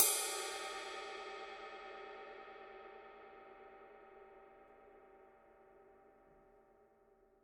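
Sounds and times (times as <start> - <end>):
medium weight ride cymbal: 0.0 - 2.0.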